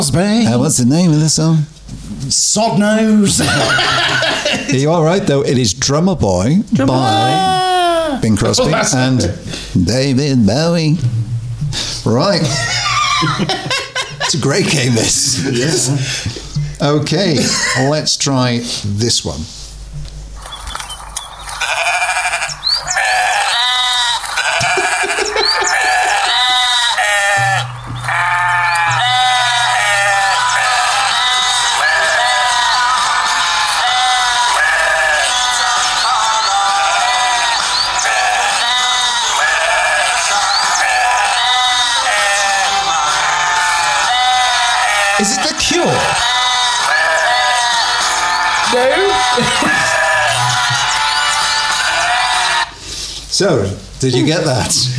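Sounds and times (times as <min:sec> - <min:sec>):
speech: 0:00.0 - 0:07.6, 0:08.2 - 0:20.1, 0:53.4 - 0:54.9
laughter: 0:03.3 - 0:05.2, 0:06.7 - 0:09.4, 0:12.2 - 0:16.4, 0:17.2 - 0:18.0, 0:23.1 - 0:52.7
flock of sheep bleating: 0:06.8 - 0:08.3, 0:21.6 - 0:52.7.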